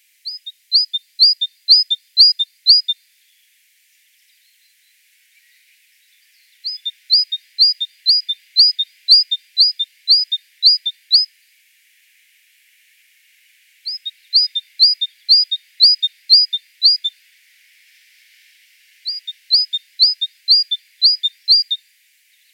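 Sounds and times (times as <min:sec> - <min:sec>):
great tit singing in Wiesloch: 0:00.3 - 0:03.0, 0:06.3 - 0:11.3, 0:13.9 - 0:17.1, 0:19.1 - 0:21.8.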